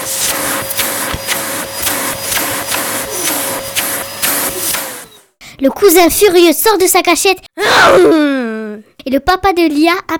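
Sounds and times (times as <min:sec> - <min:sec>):
loud vacuum cleaner roaring with pulsing suction: 0:00.0 - 0:05.4
speech: 0:05.6 - 0:08.3, 0:09.0 - 0:10.1.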